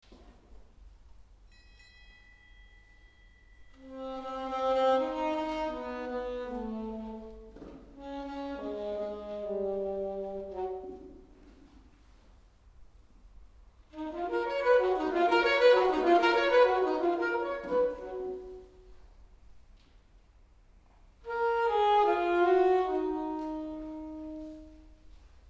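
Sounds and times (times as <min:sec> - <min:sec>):
alto saxophone solo: 0:03.8 - 0:11.7, 0:13.9 - 0:19.0, 0:21.2 - 0:25.2.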